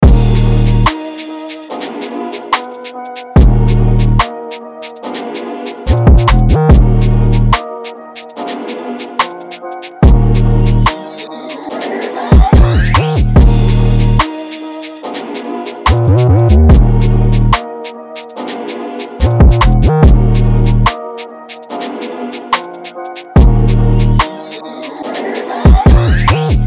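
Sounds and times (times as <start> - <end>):
ching cymbals in E flat minor: 0.0 - 26.6.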